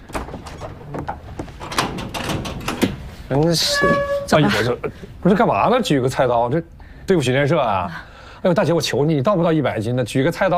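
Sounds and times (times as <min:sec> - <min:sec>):
sliding door rolling open: 0:00.1 - 0:04.6
speech: 0:03.3 - 0:10.5.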